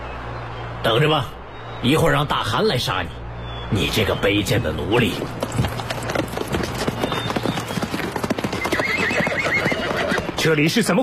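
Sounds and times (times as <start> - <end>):
speech: 0.8 - 5.4, 10.4 - 11.0
horse hooves clip-clopping as a rider comes up on horseback: 5.1 - 11.0
horse whinnying: 6.4 - 10.4.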